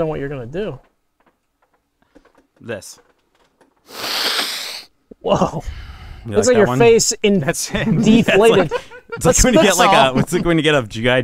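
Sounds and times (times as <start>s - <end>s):
speech: 0.0s - 0.9s, 2.6s - 3.1s, 5.2s - 11.2s
faint breath intake: 3.8s - 4.9s, 5.6s - 6.4s
forceful breathy exhale from a breathing exercise: 3.9s - 4.9s
laughter: 7.7s - 10.6s.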